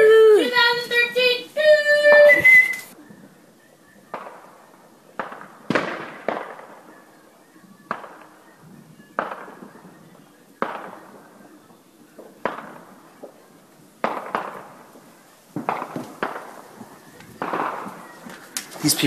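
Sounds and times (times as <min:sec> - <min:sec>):
New Year fireworks booming and crackling over a town: 0:00.0 - 0:19.0
speech: 0:18.8 - 0:19.0.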